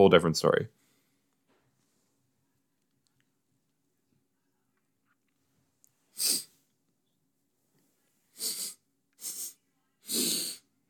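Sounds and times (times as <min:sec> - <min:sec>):
speech: 0:00.0 - 0:00.8
person sniffling a short song through the nose: 0:06.1 - 0:06.6, 0:08.3 - 0:10.8.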